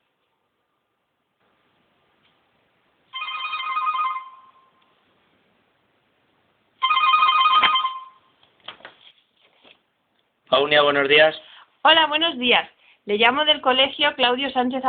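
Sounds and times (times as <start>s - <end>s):
ringback tones of an outgoing phone call: 3.1s - 4.8s, 6.8s - 8.3s
speech: 10.5s - 14.8s.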